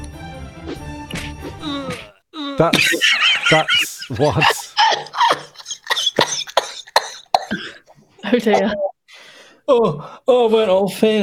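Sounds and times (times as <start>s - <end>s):
speech: 2.6s - 4.7s, 8.3s - 8.9s, 9.7s - 11.2s
breathless wheezy giggling: 2.8s - 8.9s
person coughing: 4.3s - 7.9s.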